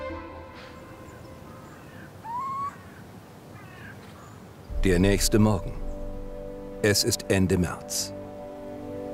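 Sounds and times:
owl hooting in a barn: 0:00.9 - 0:04.3
speech: 0:04.8 - 0:05.8, 0:06.8 - 0:08.2.

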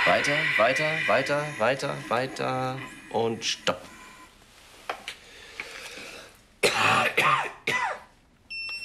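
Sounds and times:
speech: 0:00.1 - 0:03.9
person coughing harshly: 0:06.6 - 0:08.1.

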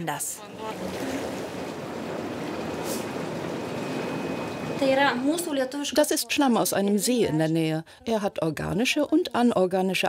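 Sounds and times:
speech: 0:00.0 - 0:01.4, 0:04.7 - 0:10.0
loud cascading water in a spa: 0:00.4 - 0:05.1.

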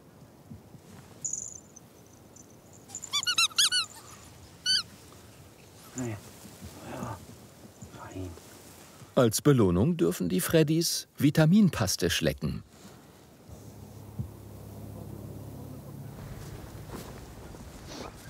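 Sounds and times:
squeaky walrus toy squeezed to lure ferrets: 0:02.9 - 0:04.9
speech: 0:06.0 - 0:06.3, 0:09.2 - 0:12.7.

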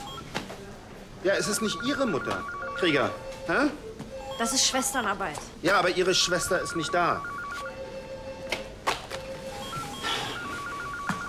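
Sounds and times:
speech: 0:01.2 - 0:07.3
telephone ringing with an electronic stepped beeping melody: 0:01.3 - 0:03.3, 0:04.1 - 0:05.2, 0:06.1 - 0:08.4, 0:09.3 - 0:11.2.

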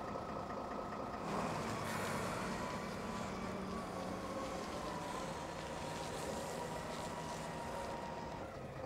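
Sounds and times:
heavy container forklift engine rumbling while lifting a boat: 0:00.0 - 0:08.8.

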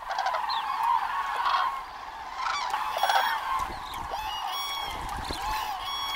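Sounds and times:
common cranes calling as adult and young birds set off together at dawn: 0:00.0 - 0:06.1.

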